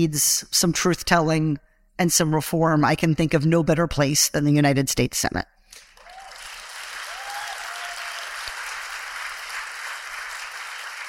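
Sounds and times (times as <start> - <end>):
speech: 0.0 - 5.6
crowd applause: 5.8 - 11.0.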